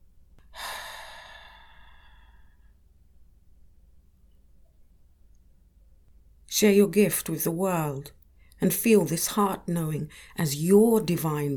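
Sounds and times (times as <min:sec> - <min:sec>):
long soft exhale during a guided meditation: 0:00.6 - 0:02.7
speech: 0:06.6 - 0:11.5.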